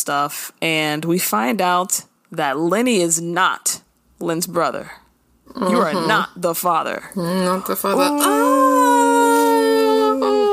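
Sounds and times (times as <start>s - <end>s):
speech: 0.0s - 8.9s
dog howling: 8.0s - 10.5s.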